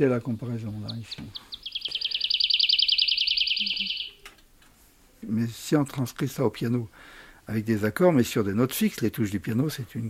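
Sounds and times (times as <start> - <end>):
speech: 0.0 - 1.6, 5.2 - 10.0
woodlark singing a fast liquid trill: 0.0 - 4.3.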